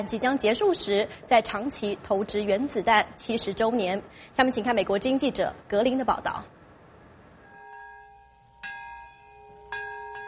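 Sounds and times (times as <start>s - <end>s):
speech: 0.0s - 6.6s
large memorial bell ringing outdoors: 7.4s - 10.2s.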